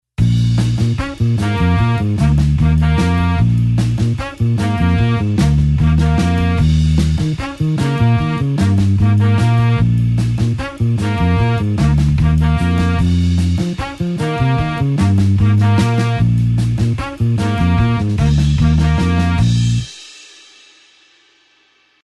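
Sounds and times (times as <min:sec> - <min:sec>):
blues horn section in B flat with eight-beat rhythm: 0:00.2 - 0:19.9.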